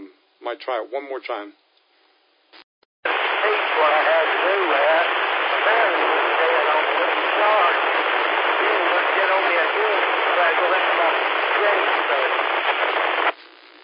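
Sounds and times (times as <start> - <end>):
speech: 0.5 - 1.6, 3.4 - 5.0
amateur radio static hiss: 2.5 - 13.8
faint unintelligible voice in weak amateur radio transmission: 3.1 - 12.4.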